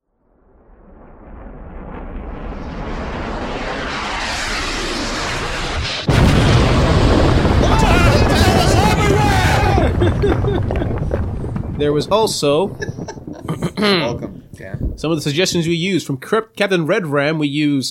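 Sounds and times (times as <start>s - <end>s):
loud sustained explosion: 0.2s - 15.4s
low rumble: 0.2s - 15.4s
laughter: 8.3s - 11.3s, 12.4s - 14.5s
speech: 11.8s - 12.9s, 13.8s - 14.3s, 15.0s - 17.8s.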